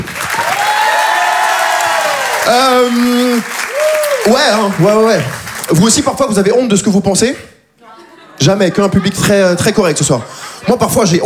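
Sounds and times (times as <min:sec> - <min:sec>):
audience whooping and shouting cheers: 0:00.0 - 0:05.5
audience clapping: 0:00.0 - 0:06.4
speech: 0:02.5 - 0:07.5, 0:08.4 - 0:11.2
laughter: 0:08.0 - 0:11.2.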